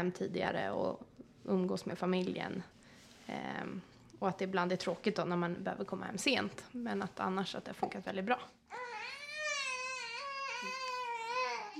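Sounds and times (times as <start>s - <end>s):
speech: 0.0s - 8.8s
baby crying and babbling in a studio: 8.7s - 11.7s.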